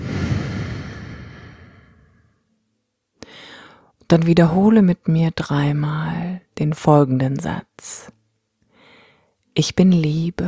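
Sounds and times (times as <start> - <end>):
deep breath out as a breathing exercise: 0.0 - 2.4, 3.2 - 3.9, 8.7 - 9.3
speech: 4.1 - 8.2, 9.6 - 10.4.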